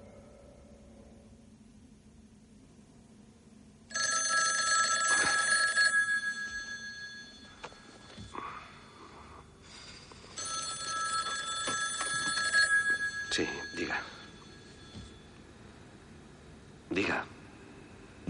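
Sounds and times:
telephone in a motel room ringing: 3.9s - 8.4s, 10.1s - 15.4s.

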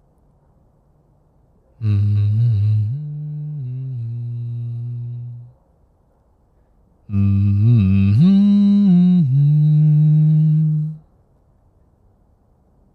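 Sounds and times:
speech: 1.8s - 2.2s
man humming a simple tune: 1.8s - 5.6s, 7.1s - 11.0s.

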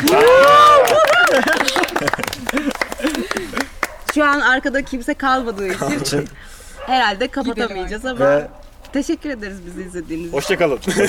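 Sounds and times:
studio crew whooping and cheering: 0.0s - 3.8s
laughter: 0.0s - 4.0s, 5.5s - 6.6s, 10.8s - 11.0s
small studio crew clapping: 0.0s - 4.5s
speech: 4.2s - 11.0s.

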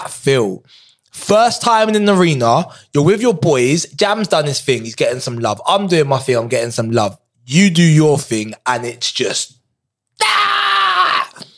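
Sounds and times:
speech: 0.0s - 9.6s, 10.2s - 10.6s
person imitating an anime-style power-up yell: 10.2s - 11.5s.

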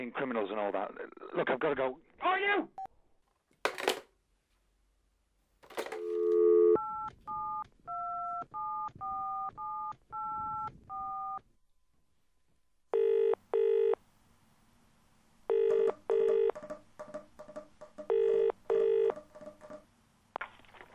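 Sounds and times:
speech: 0.0s - 2.9s
double-burst telephone ringing tones on the line: 5.8s - 11.4s, 12.9s - 14.0s, 15.5s - 16.6s, 18.1s - 19.2s
touch-tone telephone dialing beeps: 6.0s - 11.4s, 15.5s - 16.6s.

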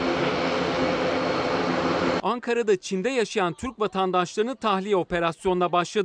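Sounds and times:
large military cargo plane engine drone: 0.0s - 2.2s
speech: 2.3s - 6.0s.

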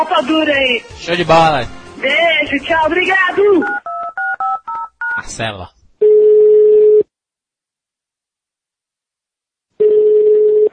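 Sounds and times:
speech: 0.0s - 3.8s, 5.2s - 5.8s
telephone ringback tone: 6.0s - 7.0s, 9.8s - 10.7s.

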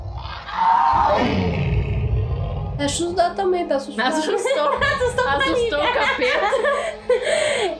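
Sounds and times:
monstrous scream of cat-like wail sliding into lion-like roar: 0.0s - 2.8s
speech: 2.8s - 7.7s
laughter: 4.4s - 7.7s.

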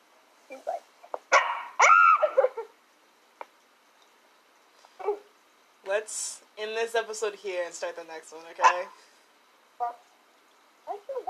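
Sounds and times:
dog barking with sharp yelps and whiny barks: 1.3s - 2.4s, 8.6s - 9.0s
speech: 5.9s - 9.1s.

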